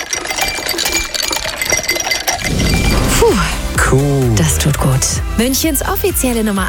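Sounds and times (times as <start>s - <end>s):
ice cubes clinking against a glass: 0.0s - 3.2s
speech: 3.3s - 6.6s.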